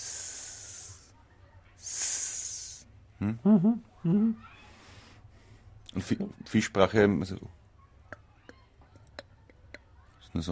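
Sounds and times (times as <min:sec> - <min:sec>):
voice imitating a snake's hiss: 0:00.0 - 0:01.1, 0:01.8 - 0:02.9
speech: 0:03.2 - 0:04.6, 0:06.0 - 0:07.6.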